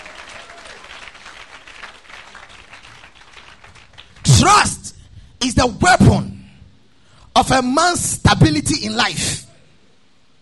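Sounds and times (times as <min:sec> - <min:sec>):
audience clapping in praise: 0:00.0 - 0:04.8
speech: 0:05.4 - 0:06.3, 0:07.4 - 0:09.4.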